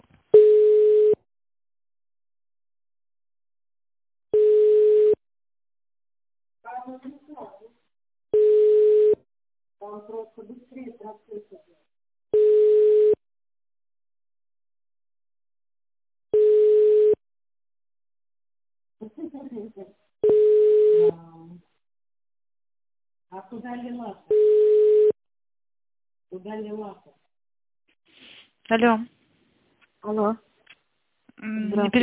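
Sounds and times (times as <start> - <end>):
telephone ringback beeps during an unanswered call transfer: 0.4 - 1.2, 4.4 - 5.2, 8.4 - 9.2, 12.4 - 13.2, 16.4 - 17.2, 20.2 - 21.1, 24.3 - 25.2
speech: 6.9 - 7.2, 23.5 - 24.4, 26.3 - 27.2, 28.7 - 29.2, 30.0 - 30.5, 31.4 - 32.0.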